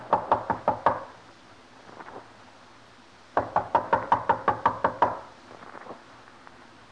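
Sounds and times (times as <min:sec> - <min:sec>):
sharp rapid knocks on a door: 0:00.0 - 0:01.1, 0:03.4 - 0:05.3.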